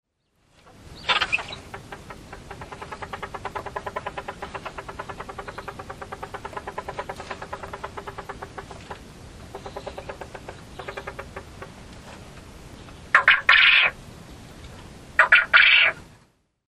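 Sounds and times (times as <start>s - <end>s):
Japanese quail calling: 0.7s - 11.8s, 13.1s - 14.0s, 15.2s - 16.0s.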